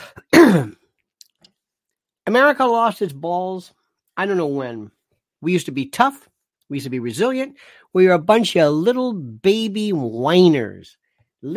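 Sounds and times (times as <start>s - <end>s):
loud raspy throat clearing or short cough: 0.0s - 0.9s
speech: 0.5s - 0.8s, 2.3s - 11.5s
faint breath: 7.6s - 7.9s.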